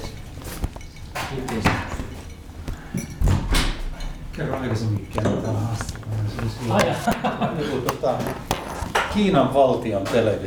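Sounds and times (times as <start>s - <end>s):
speech: 1.3s - 2.0s, 4.4s - 8.6s, 9.2s - 10.4s
door closing with a thud: 3.2s - 3.9s
laughter: 6.7s - 8.4s.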